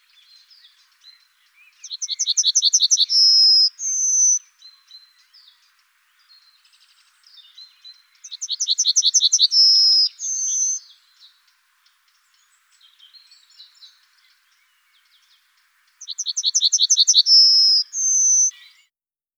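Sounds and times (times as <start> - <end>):
yellowhammer soft calls: 0.0 - 18.9
yellowhammer Emberiza citrinella singing: 0.1 - 5.6, 6.8 - 11.0, 16.0 - 18.9.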